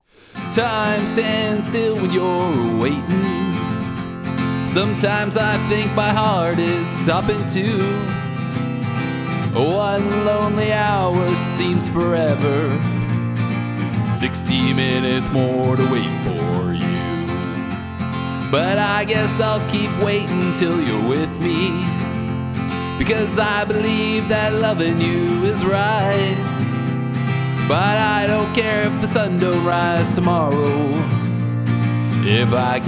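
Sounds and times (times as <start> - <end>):
guitars: 0.0 - 32.8
vocals recorded with a Shure SM4: 0.2 - 4.0, 4.6 - 8.3, 9.5 - 13.0, 14.0 - 17.7, 18.5 - 22.0, 23.0 - 26.6, 27.6 - 31.2, 32.2 - 32.8.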